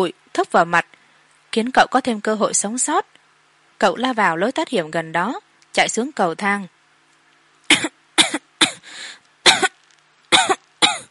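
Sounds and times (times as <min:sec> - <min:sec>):
speech: 0:00.0 - 0:03.2, 0:03.8 - 0:06.8
person coughing violently from choking on thick smoke: 0:07.7 - 0:08.9, 0:09.5 - 0:11.1
raspy drawn-out breath: 0:08.8 - 0:09.3.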